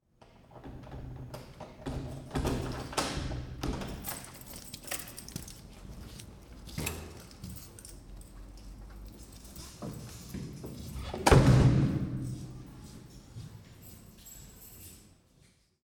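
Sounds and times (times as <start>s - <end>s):
front door opening: 0.5s - 8.1s, 9.1s - 14.9s
keys jingling: 3.8s - 11.1s, 12.2s - 15.3s.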